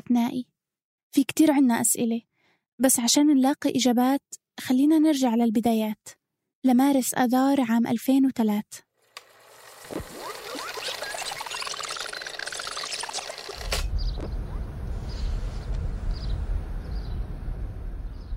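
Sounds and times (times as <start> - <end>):
speech: 0.1 - 0.5, 1.1 - 8.9
short high bird chirps: 10.2 - 15.4
rumbling outdoor noise of US military vehicles moving through Iraqi streets: 13.6 - 18.3.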